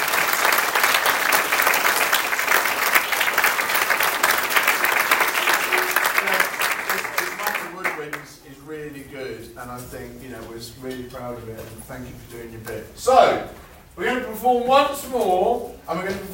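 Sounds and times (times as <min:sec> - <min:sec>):
crowd of people applauding: 0:00.0 - 0:08.3
speech: 0:09.7 - 0:13.6, 0:14.4 - 0:16.3.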